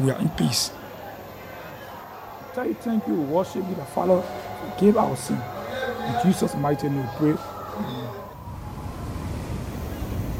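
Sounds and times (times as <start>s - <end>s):
speech: 0.0s - 0.8s, 2.6s - 8.2s
sea waves: 4.0s - 10.3s.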